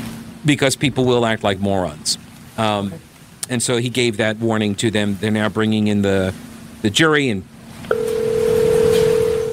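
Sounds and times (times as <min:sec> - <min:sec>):
speech: 0:00.5 - 0:07.5
telephone tone on a courtroom line in Kenosha: 0:07.9 - 0:09.5.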